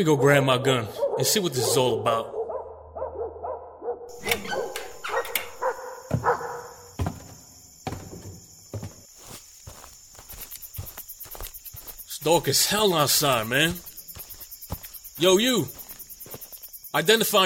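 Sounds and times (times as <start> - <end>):
speech: 0.0 - 2.4, 12.2 - 13.9, 15.2 - 15.8, 16.9 - 17.4
dogs barking at night: 0.0 - 7.0
steady high insect chirr: 4.1 - 17.4
footsteps crunching: 6.1 - 17.4.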